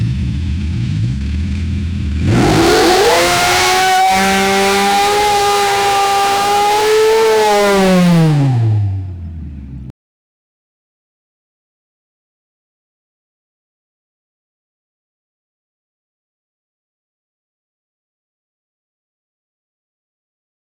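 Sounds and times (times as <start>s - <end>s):
Formula 1 car at high acceleration: 0.1s - 9.9s.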